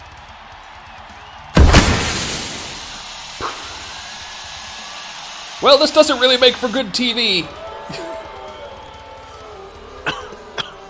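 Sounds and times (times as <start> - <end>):
smoke grenade deployed into an arena bursting and hissing: 1.6 - 5.6
speech: 5.6 - 8.1.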